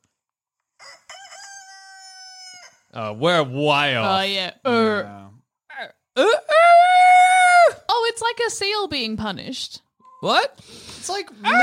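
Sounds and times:
rooster crowing: 0.8s - 2.9s
speech: 2.9s - 6.8s, 8.2s - 11.6s.

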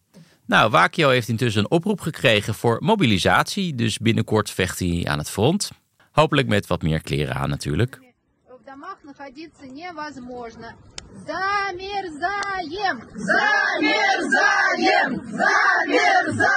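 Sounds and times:
speech: 0.5s - 8.0s, 8.7s - 16.5s
group of women chanting a protest slogan in unison: 12.8s - 16.5s.

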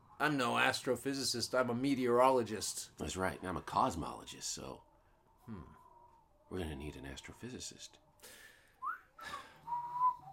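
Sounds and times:
speech: 0.2s - 4.9s, 5.5s - 5.8s, 6.5s - 8.4s
person whistling outside a window: 8.8s - 10.3s.

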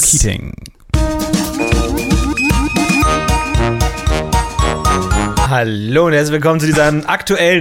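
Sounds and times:
speech: 0.1s - 1.4s, 5.5s - 7.5s
steady punchy bass beat: 1.0s - 5.5s
bright podcast intro jingle with chiming bell-like tones: 2.4s - 5.7s.

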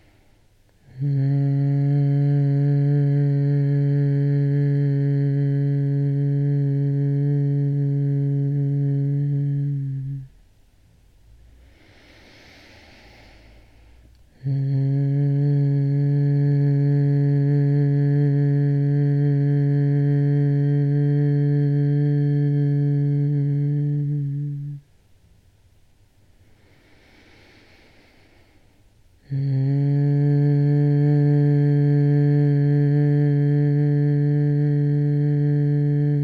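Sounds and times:
soft inhale: 0.0s - 1.1s, 11.4s - 14.7s, 26.2s - 29.6s
slow meditative humming on exhaled breaths: 0.0s - 36.2s.

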